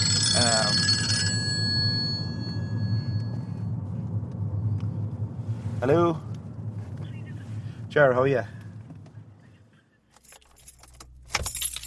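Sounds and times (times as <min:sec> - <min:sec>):
telephone bell ringing: 0:00.0 - 0:03.4
steady low rumble: 0:00.0 - 0:09.7
speech: 0:05.8 - 0:06.3, 0:07.9 - 0:08.6.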